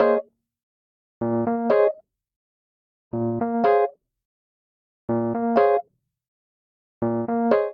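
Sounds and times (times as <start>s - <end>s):
chill upbeat electric keyboard vamp in B flat minor: 1.2s - 2.0s, 3.2s - 3.9s, 5.1s - 5.8s, 7.0s - 7.7s.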